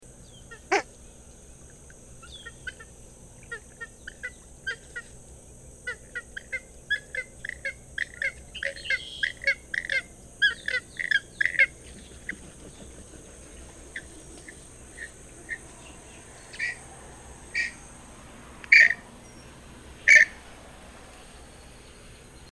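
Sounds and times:
Gray-headed Swamphen songs: 0:00.0 - 0:22.4.

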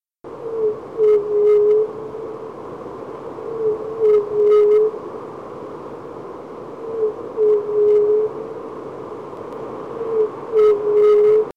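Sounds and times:
Red-billed Pigeon singing: 0:00.4 - 0:01.9, 0:03.5 - 0:05.0, 0:06.9 - 0:08.4, 0:10.0 - 0:11.5.

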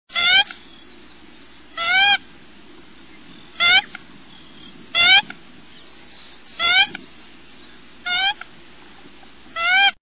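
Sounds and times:
American coot calling: 0:00.1 - 0:00.7, 0:01.7 - 0:02.3, 0:03.5 - 0:05.4, 0:06.6 - 0:07.1, 0:08.0 - 0:10.0.

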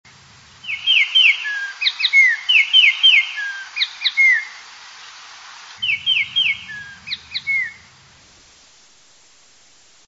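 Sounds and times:
spot-breasted oriole calling: 0:00.6 - 0:08.0.

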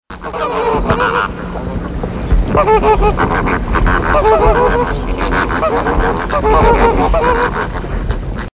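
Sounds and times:
greater flamingo songs: 0:00.1 - 0:08.5.

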